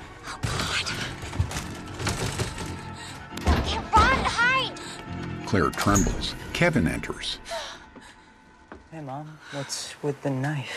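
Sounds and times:
someone forcing a door lock: 0.8s - 4.2s
speech: 5.5s - 7.6s, 9.0s - 10.7s.

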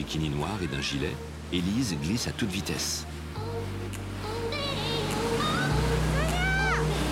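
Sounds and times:
speech: 0.0s - 3.2s
jet ski engine droning at full speed over small waves: 3.1s - 7.1s.

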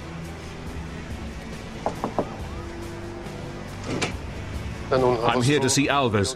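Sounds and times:
speech: 1.8s - 2.2s, 4.9s - 6.3s
firm knocks on a reinforced metal door in a grubby side alley: 1.8s - 2.5s.

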